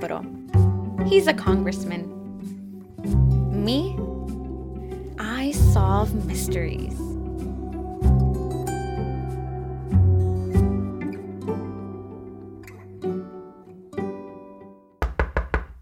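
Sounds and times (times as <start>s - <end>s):
speech: 0.0s - 2.2s, 3.0s - 4.1s, 5.4s - 7.0s
gentle music: 0.0s - 15.0s
sharp knocks on a door: 15.0s - 15.8s.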